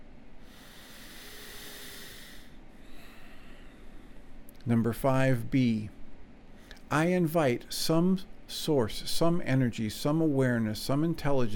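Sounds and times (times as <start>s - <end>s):
slow faint breathing during a guided self-help exercise: 0.4s - 4.4s
speech: 4.6s - 6.0s, 6.9s - 11.5s.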